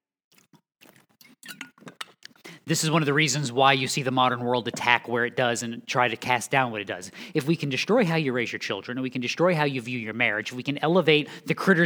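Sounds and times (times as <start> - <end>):
sipping water with wet swallowing noises: 0.3 - 7.8, 10.1 - 11.8
speech: 2.7 - 11.8.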